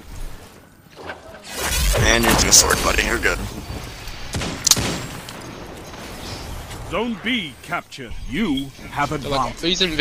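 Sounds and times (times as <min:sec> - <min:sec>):
video game noise: 0:00.0 - 0:09.9
gunfire in a video game during a Control match: 0:01.5 - 0:06.9
speech: 0:02.2 - 0:03.7, 0:06.9 - 0:09.9.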